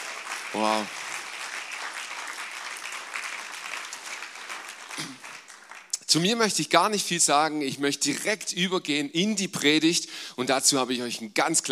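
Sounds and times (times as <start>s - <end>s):
crowd applauding: 0.0s - 6.4s
speech: 0.5s - 1.0s, 6.1s - 11.7s.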